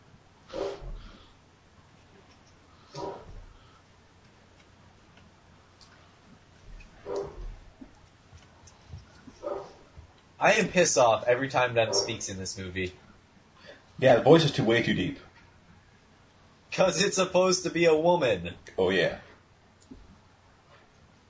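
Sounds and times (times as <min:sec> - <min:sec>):
dog barking muffled: 0:00.5 - 0:01.0, 0:03.0 - 0:03.4, 0:07.0 - 0:07.5, 0:09.4 - 0:09.8, 0:11.9 - 0:12.2
speech: 0:10.4 - 0:13.0, 0:14.0 - 0:15.3, 0:16.8 - 0:19.3.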